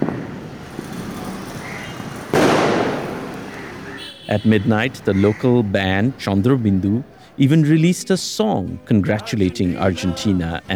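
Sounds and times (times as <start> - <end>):
fireworks exploding outdoors in celebration: 2.3 - 3.4
laughter: 4.3 - 10.7
speech: 4.3 - 10.7.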